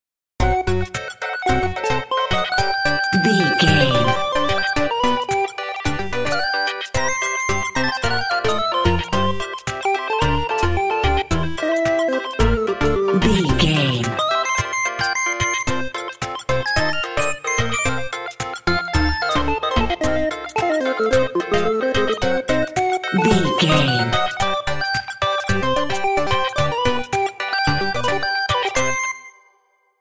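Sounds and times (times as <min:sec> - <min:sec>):
happy video game level music: 0:00.4 - 0:29.2.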